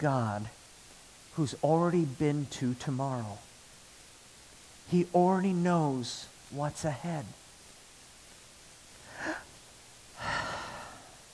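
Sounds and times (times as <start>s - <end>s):
speech: 0.0s - 0.6s, 1.4s - 3.5s, 4.9s - 7.4s
person breathing out audibly: 9.1s - 9.5s, 10.2s - 11.2s.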